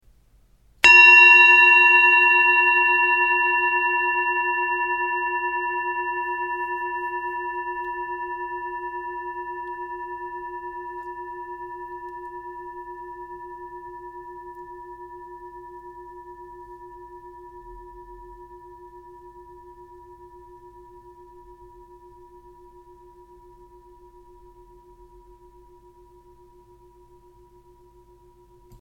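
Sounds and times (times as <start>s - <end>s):
Tibetan singing bowl: 0.8s - 28.7s.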